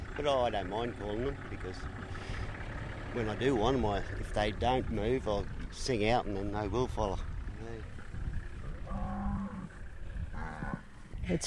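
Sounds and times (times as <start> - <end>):
rumbling outdoor background: 0.0 - 11.4
speech: 0.2 - 2.3, 3.1 - 8.0, 11.3 - 11.4
cattle mooing: 8.5 - 11.0.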